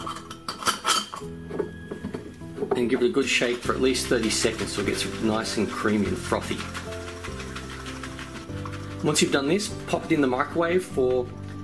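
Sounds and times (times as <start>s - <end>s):
lid being put on a glass jar half filled with milk: 0.0s - 3.0s
speech: 1.2s - 1.7s, 2.7s - 6.8s, 9.0s - 11.4s.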